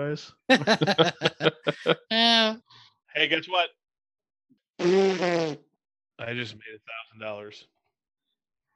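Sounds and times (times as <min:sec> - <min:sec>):
speech: 0:00.0 - 0:02.6, 0:03.2 - 0:03.8, 0:04.8 - 0:05.6, 0:06.2 - 0:07.8
laughter: 0:00.5 - 0:02.1
loud buzzy fart: 0:04.8 - 0:05.7.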